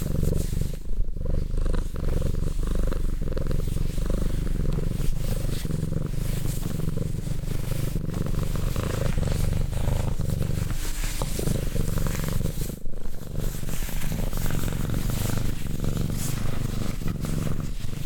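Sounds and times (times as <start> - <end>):
cat purring: 0.0 - 18.0.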